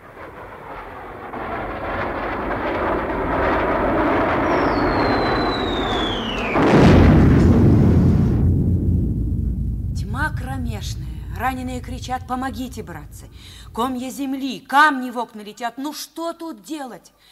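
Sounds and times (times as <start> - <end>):
German Junkers bomber aircraft droning: 0.0 - 14.1
heavy explosion of a bomb on a train: 0.0 - 14.2
falling whistle of a bomb from a Junkers bomber: 3.7 - 8.4
speech: 11.5 - 17.3.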